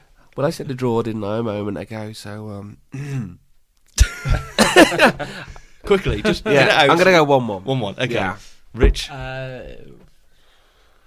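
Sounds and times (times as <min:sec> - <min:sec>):
speech: 0:00.4 - 0:03.4, 0:04.2 - 0:10.1
voiced throat clearing: 0:03.0 - 0:03.4
sharp harsh cough burst with a rough tail: 0:04.0 - 0:05.6
laughter: 0:04.0 - 0:07.0.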